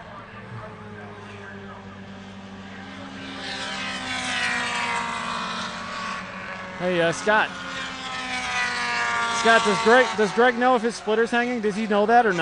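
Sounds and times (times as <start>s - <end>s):
race car engines roaring on a racetrack on a beautiful day: 0.0s - 12.4s
speech: 6.8s - 7.7s, 9.4s - 12.4s.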